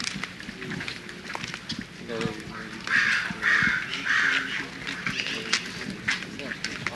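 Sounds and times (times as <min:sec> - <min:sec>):
murmuring voices: 0:00.0 - 0:06.9
outdoor noise: 0:00.0 - 0:06.9
crows cawing at a zoo: 0:02.5 - 0:05.8.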